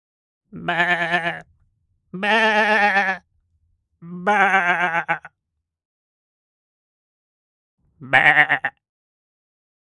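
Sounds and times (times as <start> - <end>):
sheep bleating: 0.6 - 1.5, 2.2 - 3.2, 4.1 - 5.4, 8.0 - 8.8.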